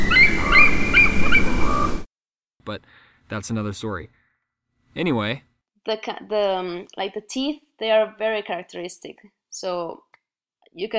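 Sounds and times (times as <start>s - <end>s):
eagle chittering calls: 0.0s - 2.0s
speech: 2.7s - 4.2s, 5.0s - 10.1s, 10.7s - 10.9s.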